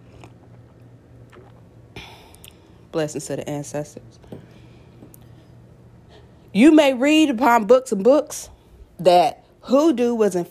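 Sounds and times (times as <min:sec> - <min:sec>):
person sipping a hot drink: 0:00.0 - 0:02.8
swallowing: 0:00.0 - 0:02.8
low steady hum: 0:00.0 - 0:10.4
speech: 0:02.9 - 0:04.3, 0:06.6 - 0:10.4.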